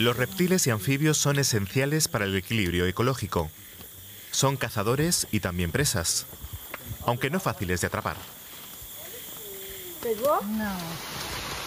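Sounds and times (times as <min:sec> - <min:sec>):
speech: 0:00.0 - 0:03.7, 0:04.3 - 0:08.4, 0:10.0 - 0:11.4
sudden heavy downpour of rain: 0:09.5 - 0:11.6.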